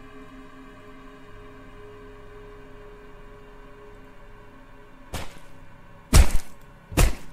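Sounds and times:
pig-slaughtering knife stabbing through a wooden door: 6.1s - 7.3s.

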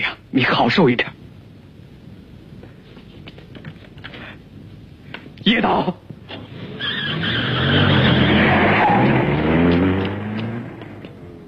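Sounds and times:
speech: 0.4s - 1.2s, 5.5s - 6.0s
car tires squealing: 6.3s - 11.1s
car engine roaring while speeding wildly through the night: 6.3s - 11.4s.

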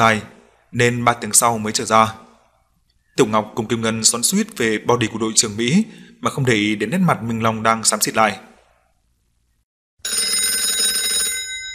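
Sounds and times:
speech: 0.0s - 2.2s, 3.2s - 8.5s
mobile phone ringing with a bright buzzy ringtone: 10.0s - 11.7s.

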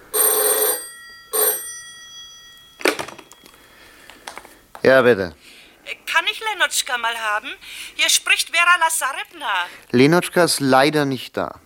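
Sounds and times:
telephone ringing at a dacha: 0.0s - 4.3s
speech: 4.8s - 11.6s.

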